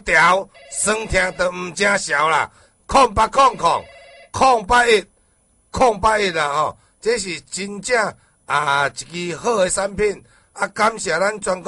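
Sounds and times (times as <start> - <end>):
speech: 0.0 - 5.1, 5.7 - 11.6
telephone ringing with a melodic ring: 0.5 - 2.0, 3.3 - 4.4.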